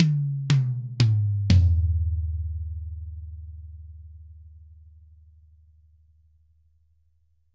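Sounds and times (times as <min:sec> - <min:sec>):
tom drum: 0:00.0 - 0:03.6.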